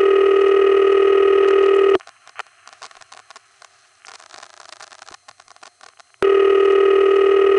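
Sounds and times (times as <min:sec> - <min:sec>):
old New York City exchange telephone ringing tone: 0:00.0 - 0:02.0, 0:06.2 - 0:07.5
faint telephone line clicks and crackle: 0:01.4 - 0:06.2.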